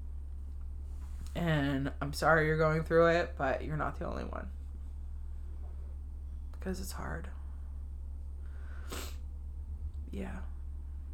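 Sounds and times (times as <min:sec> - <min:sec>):
low steady hum: 0:00.0 - 0:11.1
speech: 0:01.3 - 0:04.6, 0:06.6 - 0:07.4, 0:10.1 - 0:10.5
person sniffing: 0:08.7 - 0:09.2.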